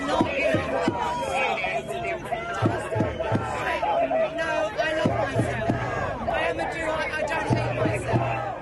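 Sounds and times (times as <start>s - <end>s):
large crowd of protesters shouting and clamoring: 0.0s - 8.6s.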